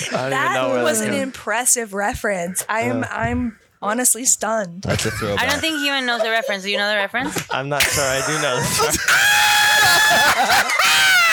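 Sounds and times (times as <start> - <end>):
laughter: 0.0 - 1.3, 4.9 - 11.3
speech: 0.0 - 11.2
person screaming in excitement: 8.8 - 11.3.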